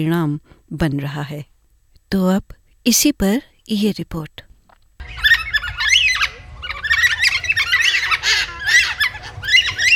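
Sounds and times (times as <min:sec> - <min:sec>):
speech: 0:00.0 - 0:01.5, 0:02.1 - 0:04.5
Carnaby's black cockatoos giving harsh wailing squawks: 0:05.0 - 0:09.9.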